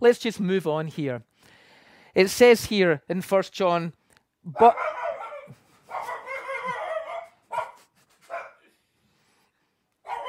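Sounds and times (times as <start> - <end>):
speech: 0.0 - 1.6, 2.2 - 6.1
dog barking at another dog passing the window: 4.6 - 8.7, 10.0 - 10.2.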